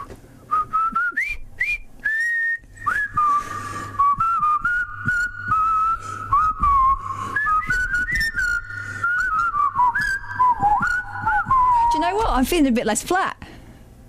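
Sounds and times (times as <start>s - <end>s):
person whistling a lively tune: 0.0s - 12.2s
breaths between whistled phrases: 2.9s - 4.3s, 5.2s - 10.2s, 13.4s - 14.0s
speech: 12.4s - 13.4s.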